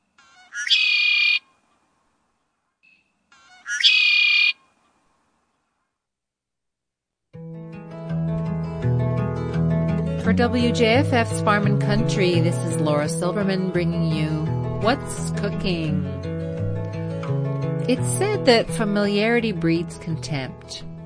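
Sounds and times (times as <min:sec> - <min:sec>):
red-winged blackbird giving buzzy trilling calls: 0:00.0 - 0:01.5, 0:02.9 - 0:04.7
music: 0:07.3 - 0:21.0
speech: 0:10.3 - 0:16.3, 0:17.9 - 0:20.9.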